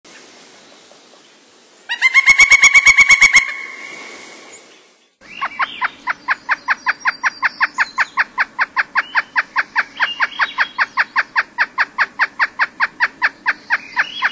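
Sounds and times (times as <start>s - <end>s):
Pileated Woodpecker calling fast series of loud clipped wuk notes: 1.9s - 4.2s, 5.2s - 14.3s.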